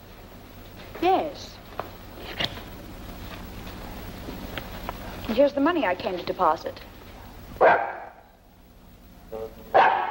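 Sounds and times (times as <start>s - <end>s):
speech: 1.0s - 1.6s, 5.3s - 6.9s
dog barking: 7.6s - 8.2s, 9.7s - 10.0s.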